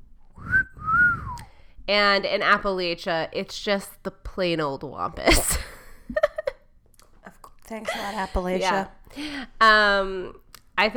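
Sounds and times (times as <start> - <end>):
person whistling two notes: 0.4 - 1.5
speech: 1.9 - 5.7, 7.7 - 10.9.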